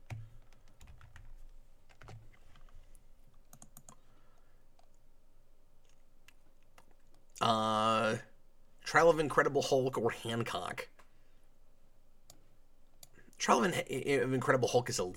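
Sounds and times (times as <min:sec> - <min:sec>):
computer keyboard typing while copying and pasting: 0:00.0 - 0:04.1, 0:05.8 - 0:07.2
speech: 0:08.9 - 0:11.0, 0:13.5 - 0:15.1.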